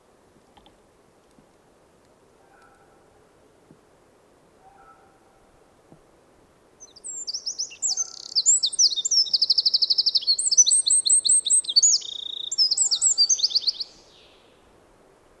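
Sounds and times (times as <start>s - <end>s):
Eurasian wren song: 6.8s - 14.7s.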